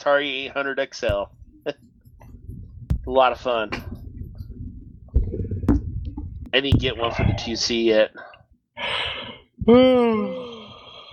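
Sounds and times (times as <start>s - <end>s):
speech: 0.0s - 1.9s, 3.1s - 4.0s, 6.5s - 10.5s
person yawning: 8.9s - 11.1s.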